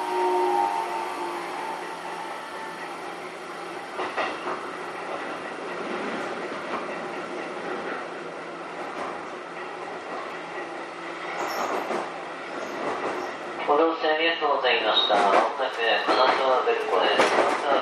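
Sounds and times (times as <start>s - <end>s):
commuter train rumble heard from inside the car: 0.0s - 17.8s.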